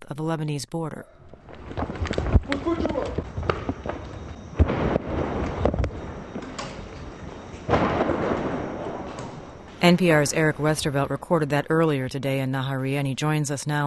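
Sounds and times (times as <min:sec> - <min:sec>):
speech: 0:00.1 - 0:03.2, 0:09.8 - 0:13.8
Katyusha rocket striking an apartment building in downtown Nahariya: 0:04.6 - 0:06.4, 0:07.7 - 0:09.6
people's voices: 0:09.8 - 0:13.8.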